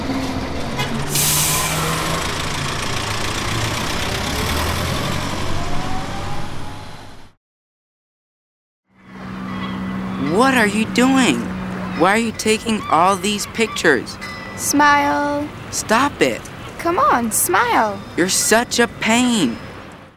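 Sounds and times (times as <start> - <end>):
heavy bus engine droning and idling: 0.0 - 7.4, 9.0 - 20.1
sharp hiss of bus air brakes: 1.0 - 2.8
speech: 10.4 - 19.7.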